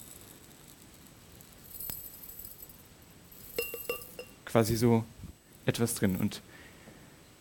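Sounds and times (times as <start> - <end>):
glass jars clinking during a demonstration: 3.4 - 4.4
speech: 4.5 - 6.6.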